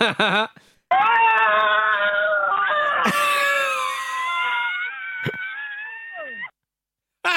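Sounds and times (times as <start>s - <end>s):
two people screaming: 0.9s - 6.6s.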